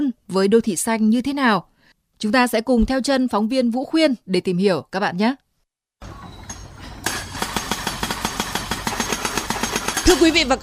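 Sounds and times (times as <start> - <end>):
speech: 0.3 - 5.4, 10.1 - 10.6
compactor pounding at a road construction site: 6.6 - 10.6.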